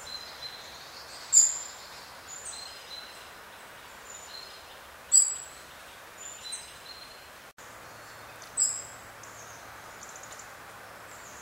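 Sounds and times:
constant hiss: 0.0s - 11.4s
European robin Erithacus rubecula sharp high clicking ticks: 10.0s - 10.5s.

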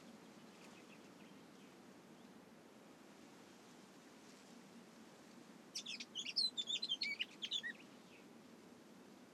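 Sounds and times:
Eurasian blackcap Sylvia atricapilla singing: 5.8s - 7.8s.

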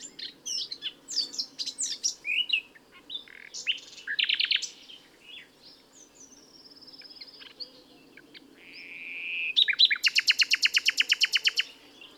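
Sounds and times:
common nightingale Luscinia megarhynchos song: 0.0s - 12.1s.

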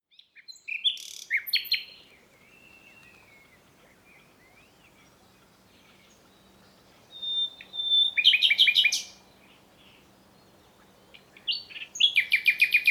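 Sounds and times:
common nightingale Luscinia megarhynchos song: 0.1s - 12.8s.

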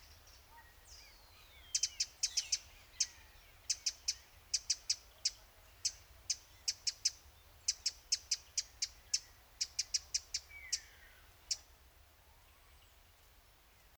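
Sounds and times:
faint background hiss: 0.0s - 13.9s
Eurasian wren Troglodytes troglodytes giving sharp high ticking call notes: 1.6s - 11.7s.

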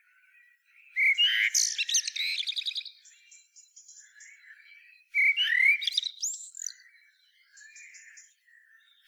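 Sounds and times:
common blackbird Turdus merula singing fluted whistles and squeaky twitter: 0.7s - 9.0s.

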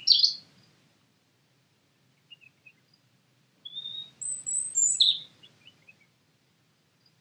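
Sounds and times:
European robin Erithacus rubecula singing: 0.0s - 0.8s, 3.6s - 6.0s.

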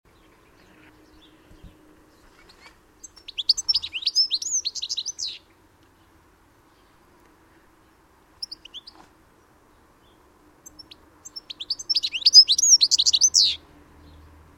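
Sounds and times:
European goldfinch Carduelis carduelis twittering: 2.5s - 5.4s, 10.6s - 13.6s.

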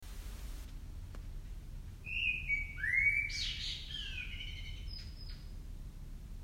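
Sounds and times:
faint low background rumble: 0.0s - 6.4s
common blackbird singing fluted whistles and twitter: 2.0s - 5.5s.

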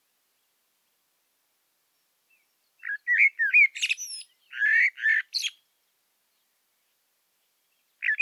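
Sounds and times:
common blackbird Turdus merula singing: 1.9s - 8.2s.

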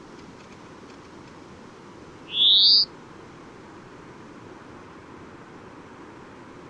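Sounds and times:
faint low background hiss: 0.0s - 6.6s
European greenfinch Chloris chloris call sliding upward: 2.3s - 2.9s.

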